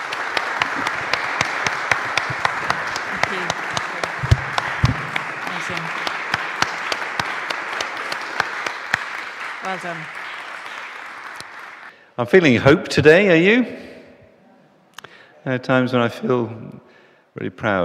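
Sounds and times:
sizeable crowd applauding: 0.0 - 12.0
speech: 9.7 - 10.2, 12.2 - 13.8, 15.4 - 17.8.

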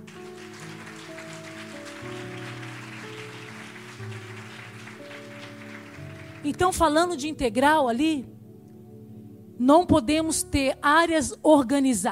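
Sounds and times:
crowd applauding: 0.0 - 7.0
sustained keyboard or organ chords: 0.0 - 10.7
speech: 6.4 - 8.3, 9.6 - 12.1.

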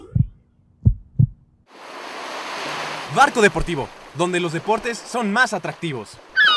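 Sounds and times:
deep thudding heartbeat sound effect in a radio jingle: 0.0 - 1.5
speech: 3.1 - 6.4.

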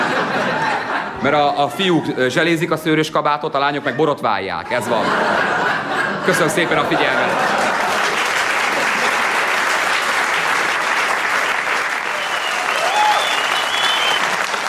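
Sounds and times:
laughter: 0.0 - 2.4, 3.6 - 10.1
speech: 1.2 - 5.6, 6.3 - 7.6
large audience applauding: 6.6 - 14.6
faint audience whistles or cheers: 12.0 - 14.6.

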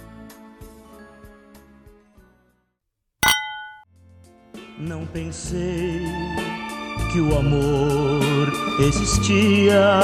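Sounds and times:
wine glasses clinking in a toast: 3.2 - 3.8
speech: 4.8 - 10.0.

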